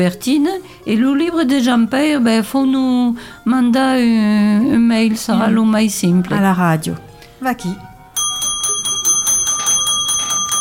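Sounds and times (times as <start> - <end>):
speech: 0.0 - 7.9
small hand bell ringing: 8.2 - 10.5.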